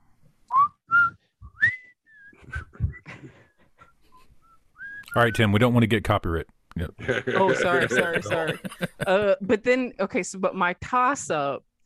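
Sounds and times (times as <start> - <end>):
person whistling a bouncy TV theme tune: 0.5 - 3.1, 4.4 - 5.2
speech: 5.2 - 11.7
laughter: 6.9 - 9.3.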